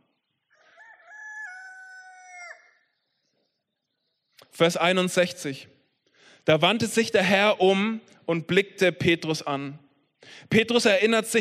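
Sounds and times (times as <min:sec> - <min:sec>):
single rooster crowing: 0:00.5 - 0:02.8
speech: 0:04.5 - 0:05.8, 0:06.4 - 0:11.4.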